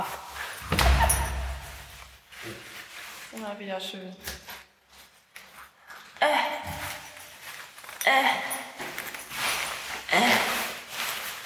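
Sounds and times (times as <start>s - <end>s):
door pulled shut with a heavy thud: 0.6s - 1.9s
speech: 3.3s - 4.4s, 6.2s - 7.0s, 8.0s - 8.6s, 10.1s - 10.6s.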